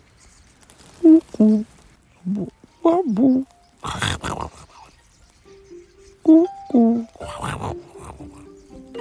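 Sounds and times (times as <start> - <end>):
speech: 1.0 - 4.3, 6.3 - 7.4
person imitating a cuckoo-like bird call: 1.0 - 4.9, 6.2 - 8.8.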